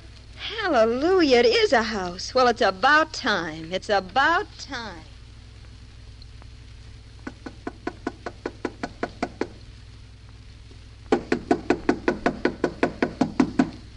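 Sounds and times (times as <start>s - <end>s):
speech: 0.7s - 5.1s
knocking on the wooden door of a house: 7.7s - 9.6s, 11.1s - 13.7s.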